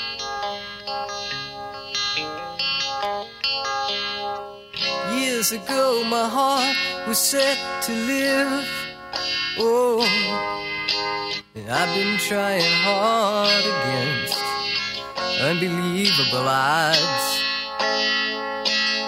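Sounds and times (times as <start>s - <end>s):
slow pop ballad sustained instrumental chords: 0.0s - 19.0s
solo singing voice with long wavering notes: 5.0s - 8.9s, 9.6s - 10.6s, 11.6s - 17.5s
speech: 5.4s - 10.6s, 11.6s - 14.4s, 15.3s - 17.4s.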